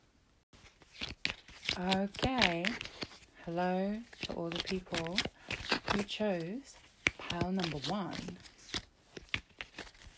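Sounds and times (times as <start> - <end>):
deck of tarot cards being shuffled: 0.6 - 10.1
speech: 1.8 - 8.5.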